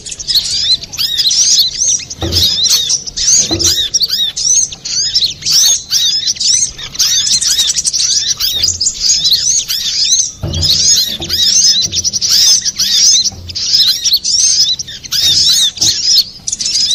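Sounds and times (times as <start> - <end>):
Little spiderhunter twittering song: 0.0 - 16.9
muffled low bumps: 2.1 - 4.2, 8.4 - 15.9.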